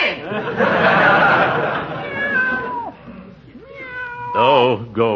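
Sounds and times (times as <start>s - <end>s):
laughter: 0.2s - 3.2s
cat meowing: 1.9s - 4.6s
speech: 5.0s - 5.1s.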